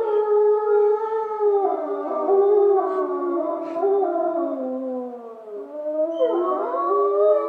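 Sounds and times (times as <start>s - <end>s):
gray wolves howling together in Schorfheide Germany: 0.0s - 7.4s.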